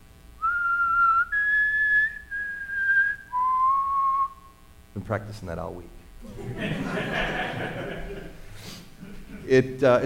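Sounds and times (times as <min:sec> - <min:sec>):
person whistling a four-note tune: 0:00.4 - 0:04.6
speech: 0:05.0 - 0:07.9, 0:09.5 - 0:10.0
laughter: 0:06.2 - 0:10.0.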